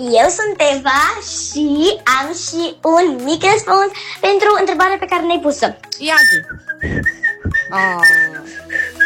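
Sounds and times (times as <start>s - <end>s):
speech: 0.0s - 8.9s
person whistling: 6.1s - 9.0s.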